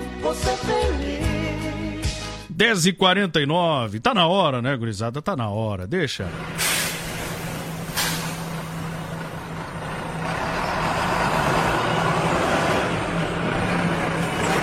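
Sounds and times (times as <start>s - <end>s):
speech: 0.2s - 1.2s, 2.6s - 6.8s
heavy bus engine rumbling as it passes: 6.1s - 14.6s
steady road noise: 6.2s - 14.6s
bus air brakes hissing: 6.5s - 9.4s.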